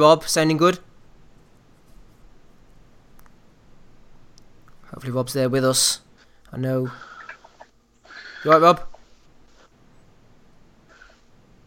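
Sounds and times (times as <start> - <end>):
speech: 0.0 - 0.9, 5.0 - 7.1, 8.4 - 8.9
low steady hiss: 0.0 - 11.6
faint breathing over a phone line: 6.2 - 9.7, 10.9 - 11.3.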